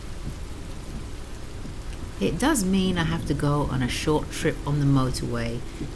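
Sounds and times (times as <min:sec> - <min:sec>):
steady dense rain pouring outdoors: 0:00.0 - 0:05.9
speech: 0:02.2 - 0:05.9.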